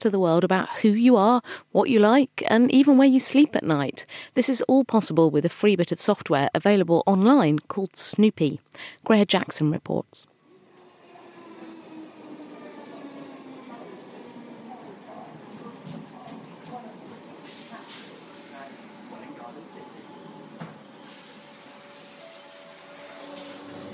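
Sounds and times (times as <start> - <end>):
speech: 0.0 - 10.3
rumble inside a moving train carriage: 10.6 - 23.9
hissing bursts: 17.4 - 19.3, 21.0 - 23.7.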